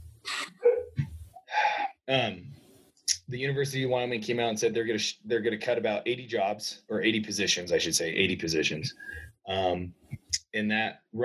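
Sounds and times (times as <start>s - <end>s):
dogs barking: 0.6s - 1.0s
speech: 2.1s - 2.6s, 3.3s - 11.2s.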